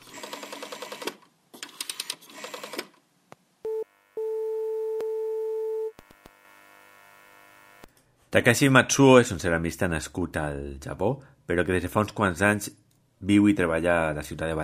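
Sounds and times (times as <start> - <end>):
long steady telephone line tone: 3.6 - 6.0
speech: 8.3 - 14.6.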